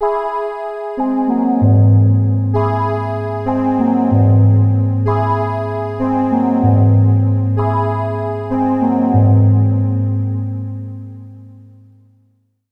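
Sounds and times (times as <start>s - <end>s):
tense music: 1.6s - 11.6s.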